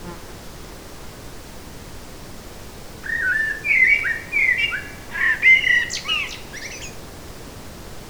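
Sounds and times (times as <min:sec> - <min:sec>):
Eurasian blackbird singing mellow whistled notes in a forest: 0:03.0 - 0:07.0.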